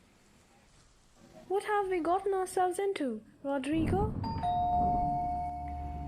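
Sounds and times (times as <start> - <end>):
speech: 1.5 - 4.4
low rumble of noise: 3.6 - 6.0
doorbell ringing with a steady electronic tone: 4.2 - 6.0.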